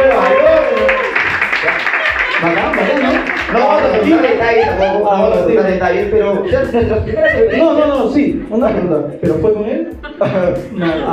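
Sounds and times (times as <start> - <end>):
person whooping: 0.0 - 2.4
crowd applauding: 0.0 - 4.9
laughter: 0.0 - 11.1
speech: 4.5 - 11.1.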